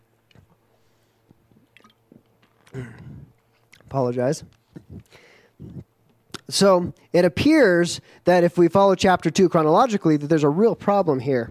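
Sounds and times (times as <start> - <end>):
person drinking sips of water: 1.5 - 6.4
speech: 3.9 - 4.6, 6.5 - 11.4.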